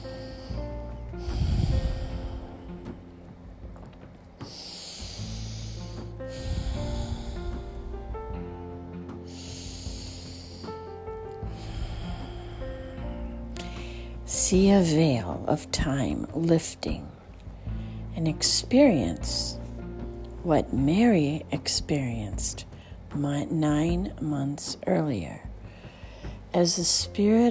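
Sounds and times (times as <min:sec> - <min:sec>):
slow deep breaths: 0:00.0 - 0:03.1, 0:04.4 - 0:14.3, 0:17.3 - 0:18.1, 0:25.6 - 0:26.5
soft sustained music: 0:00.0 - 0:27.4
speech: 0:14.5 - 0:17.2, 0:18.2 - 0:19.6, 0:20.4 - 0:25.4, 0:26.5 - 0:27.4.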